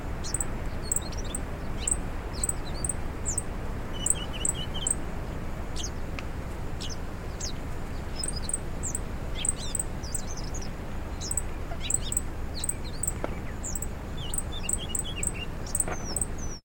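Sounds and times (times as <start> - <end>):
heavy steady low background noise: 0.0 - 16.6
bird giving high sharp chirps and sliding whistled notes: 0.2 - 5.0, 6.8 - 16.6.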